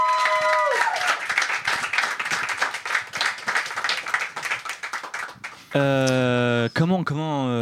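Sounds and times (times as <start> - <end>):
audience applauding: 0.0 - 5.7
speech: 5.7 - 7.6.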